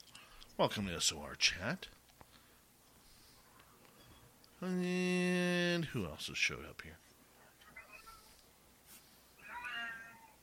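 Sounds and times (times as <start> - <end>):
speech: 0.6 - 2.0, 4.6 - 7.0
cat meowing: 9.4 - 10.4.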